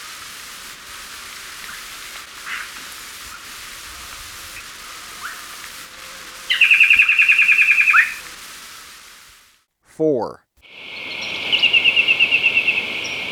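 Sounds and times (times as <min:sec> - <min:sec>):
hiss: 0:00.0 - 0:13.3
rufous antpitta whistled call in Ecuador: 0:06.5 - 0:08.3, 0:10.9 - 0:13.3
speech: 0:10.0 - 0:10.4.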